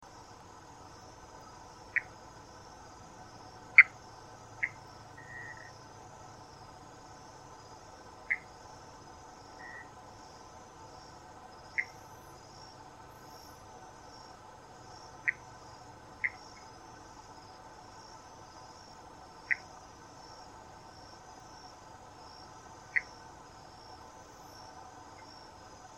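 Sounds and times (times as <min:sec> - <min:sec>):
Pithecopus hypochondrialis frog calling: 0:01.4 - 0:02.2, 0:03.7 - 0:05.8, 0:08.2 - 0:08.6, 0:09.5 - 0:10.0, 0:11.7 - 0:12.1, 0:15.1 - 0:15.6, 0:16.2 - 0:16.8, 0:19.4 - 0:19.8, 0:22.9 - 0:23.2.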